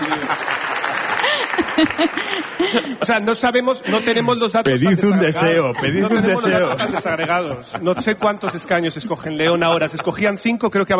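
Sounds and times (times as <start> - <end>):
audience applause at a political discussion event: 0.0 - 3.0
laughter: 0.0 - 4.4, 5.3 - 10.4
speech: 1.8 - 10.9.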